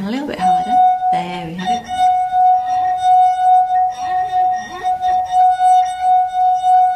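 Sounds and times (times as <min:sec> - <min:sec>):
pure ringing tone from a rubbed wet wine glass rim: 0:00.0 - 0:06.9
speech: 0:00.1 - 0:00.8.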